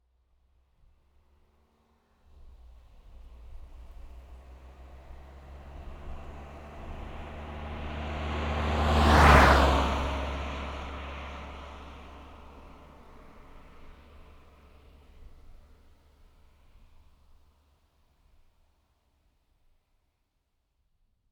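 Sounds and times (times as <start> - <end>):
Audi A3 8L 1.9 TDI passing by at medium speed and constant rpm: 2.4 - 15.6.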